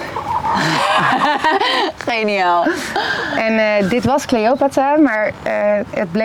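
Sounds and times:
laughter: 0:00.0 - 0:02.0
rooster and hens clucking in a chicken coop: 0:00.0 - 0:02.0
speech: 0:02.1 - 0:06.2.

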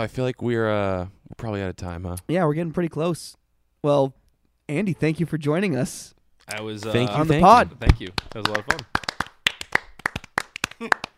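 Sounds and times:
speech: 0:00.0 - 0:09.0, 0:10.8 - 0:11.1
one person clapping hands: 0:07.9 - 0:11.1.

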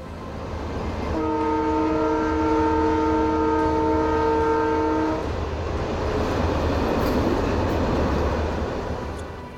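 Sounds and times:
large train rushing along rails: 0:00.0 - 0:09.5
long train horn blast: 0:01.1 - 0:05.3.

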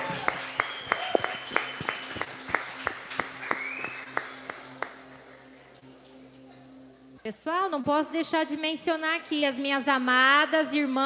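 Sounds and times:
sharp rhythmic claps: 0:00.0 - 0:05.3
audience applauding in a reverberant hall in church: 0:00.0 - 0:05.6
speech: 0:07.3 - 0:11.0.

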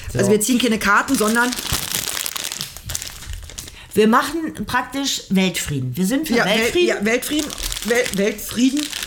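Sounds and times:
speech: 0:00.1 - 0:01.8, 0:04.0 - 0:09.0
plastic bag of Russisch Brot biscuits crinkling as it is opened: 0:01.1 - 0:03.9, 0:06.4 - 0:09.0.

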